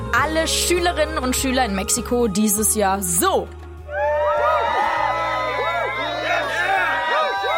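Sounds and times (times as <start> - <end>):
speech: 0.2 - 3.6
crowd of schoolchildren cheering the start of summer holidays in Mexico: 3.9 - 7.5.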